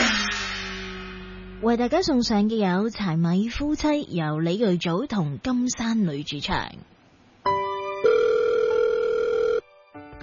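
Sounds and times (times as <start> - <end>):
speech: 1.6 - 7.6
telephone ringing with a steady electronic tone: 8.0 - 9.7.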